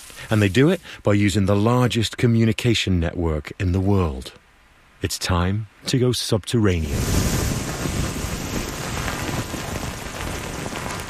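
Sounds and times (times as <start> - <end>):
steady rain pattering on leaves in a forest: 0.0 - 1.8, 6.6 - 11.0
speech: 0.2 - 4.4, 5.0 - 7.4.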